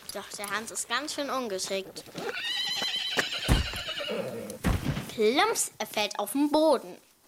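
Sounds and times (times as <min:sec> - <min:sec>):
horse hoof clops: 0:00.0 - 0:04.6
speech: 0:00.2 - 0:02.6, 0:05.2 - 0:07.1
horse whinnying loudly: 0:02.2 - 0:04.6.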